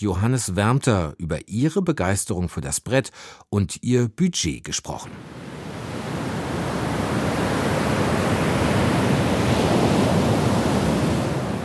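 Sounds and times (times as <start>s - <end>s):
speech: 0.0s - 5.5s
ocean surf washing onto a beach: 5.1s - 11.6s.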